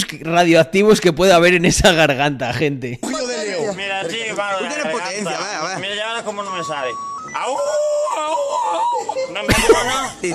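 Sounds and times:
speech: 0.0s - 3.1s, 9.4s - 10.3s
laughter: 3.0s - 10.3s
person imitating a wolf howl: 7.5s - 9.2s.

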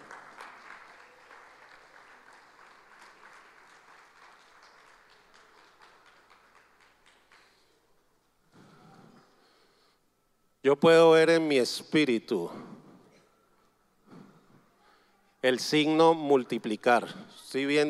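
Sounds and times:
audience applauding: 0.0s - 7.9s
speech: 10.6s - 12.8s, 15.4s - 17.8s.

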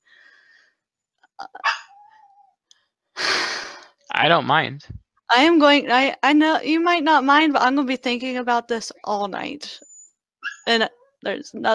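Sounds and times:
dogs barking and whining: 1.6s - 2.6s, 9.8s - 11.2s
speech: 4.2s - 9.9s, 10.6s - 11.7s
faint chirp: 9.7s - 11.1s.

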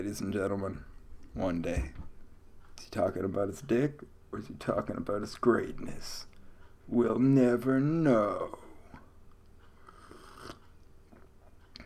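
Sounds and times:
speech: 0.0s - 2.1s, 2.8s - 6.3s, 6.9s - 8.6s
faint mouth noises: 9.7s - 11.8s
slurping sip of hot coffee: 9.8s - 11.3s.

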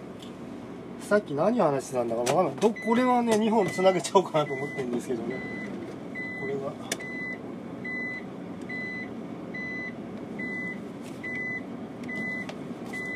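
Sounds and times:
vehicle engine rumble while reversing and maneuvering: 0.0s - 13.1s
speech: 1.1s - 5.7s
vehicle reversing alarm beeping: 2.7s - 13.1s.

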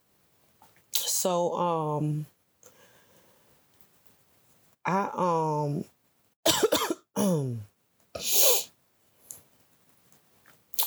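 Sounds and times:
speech: 1.2s - 2.3s, 4.9s - 5.9s, 7.2s - 8.4s
faint breathy sound: 2.6s - 3.6s
person coughing from smoking a hemp wrap: 6.5s - 7.6s.

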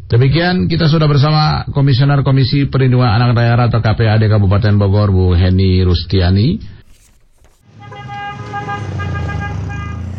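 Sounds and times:
speech: 0.1s - 6.8s
street traffic with many cars rumbling: 7.5s - 10.1s
car horn honking: 7.6s - 10.1s.

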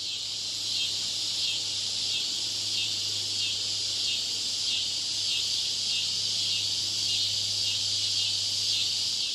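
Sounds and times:
chorus of crickets in a meadow on a summer afternoon: 0.0s - 9.3s.

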